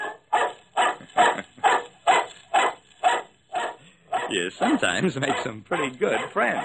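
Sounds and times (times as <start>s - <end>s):
dog barking: 0.0s - 6.6s
laughter: 1.0s - 1.9s, 4.6s - 6.0s
speech: 4.4s - 6.6s.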